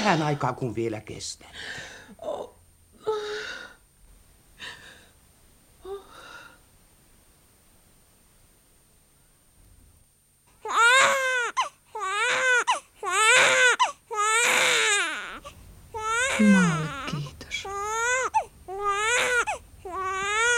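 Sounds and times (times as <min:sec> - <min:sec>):
speech: 0:00.0 - 0:02.5
newborn baby crying in strained wailing bursts: 0:10.6 - 0:20.5
low adult voice murmuring: 0:16.3 - 0:17.7.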